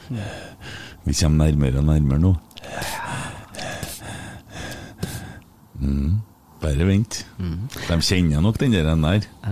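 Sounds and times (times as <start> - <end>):
speech: 0.1 - 2.9, 5.8 - 9.5
person imitating heavy breathing: 2.6 - 5.4.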